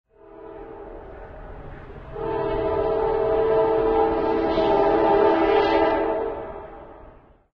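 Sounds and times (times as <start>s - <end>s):
train at a harbor: 0.1s - 7.5s.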